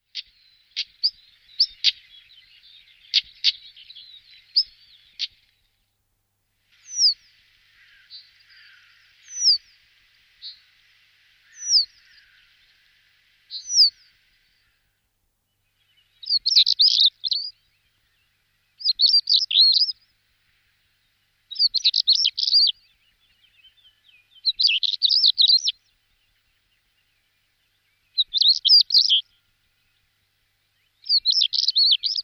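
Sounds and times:
stonechat calling: 0.1s - 5.5s, 6.8s - 10.8s, 11.4s - 14.8s, 15.8s - 20.1s, 21.5s - 25.8s, 28.1s - 29.4s, 31.0s - 32.2s.

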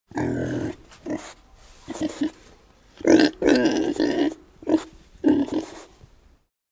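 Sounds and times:
pig vocalizing: 0.1s - 2.4s, 3.0s - 5.9s.

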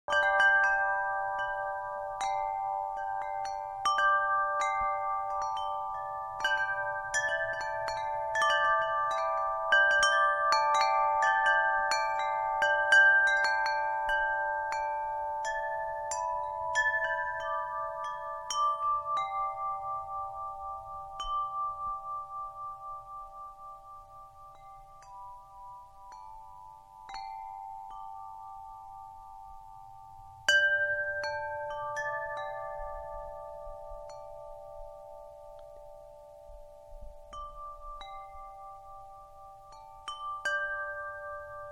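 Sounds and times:
small bell ringing: 0.1s - 41.7s.

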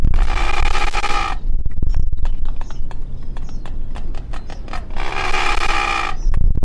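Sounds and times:
red-footed booby calling: 0.1s - 1.5s, 2.5s - 6.4s.

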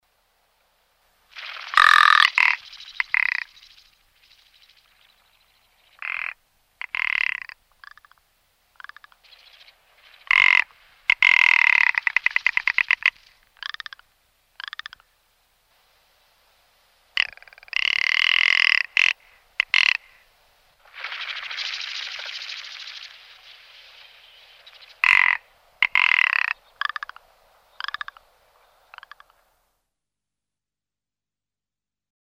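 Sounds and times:
rock ptarmigan voice: 1.4s - 3.7s, 4.8s - 8.2s, 8.8s - 15.2s, 17.2s - 20.4s, 23.0s - 29.6s.

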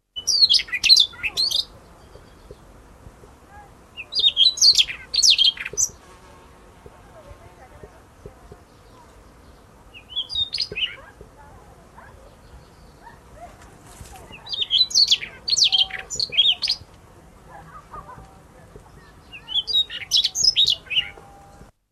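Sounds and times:
Siberian rubythroat singing: 0.0s - 21.7s.

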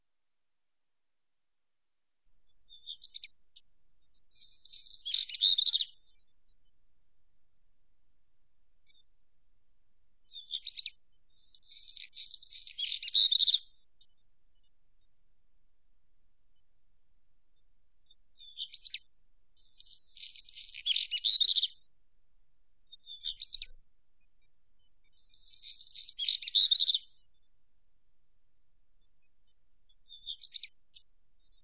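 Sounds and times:
black redstart calling: 2.4s - 7.1s, 10.3s - 15.1s, 18.0s - 21.9s, 22.9s - 27.5s, 29.0s - 31.6s.

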